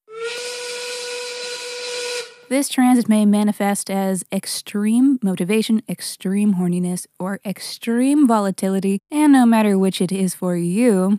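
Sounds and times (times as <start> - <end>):
1930s-style factory work steam whistle blasting: 0.1 - 2.5
speech: 2.5 - 11.1.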